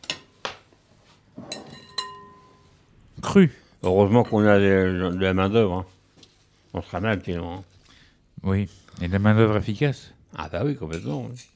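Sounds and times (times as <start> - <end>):
spoon clinking against a bowl: 1.5 - 2.7
speech: 3.3 - 5.9, 6.7 - 7.8, 8.4 - 11.5
soft shuffling of apple and pineapple pieces being mixed: 5.1 - 9.4.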